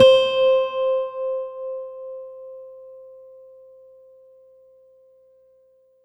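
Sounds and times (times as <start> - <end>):
Korg N1R bright nylon guitar C5 note: 0.0 - 2.1.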